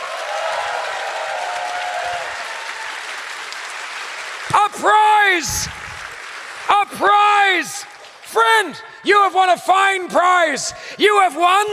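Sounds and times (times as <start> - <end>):
group applauding: 0.0 - 8.7
speech: 4.8 - 5.8, 6.9 - 11.7.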